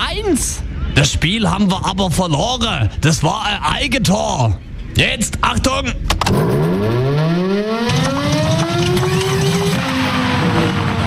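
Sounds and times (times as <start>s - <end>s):
speech: 0.2s - 7.0s
civil defense siren winding up and faltering: 6.5s - 11.0s.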